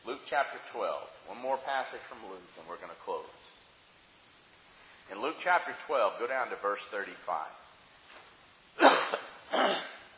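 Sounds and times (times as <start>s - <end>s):
speech: 0.3s - 3.6s, 5.1s - 7.6s
person coughing during a Bible sermon: 8.8s - 10.1s.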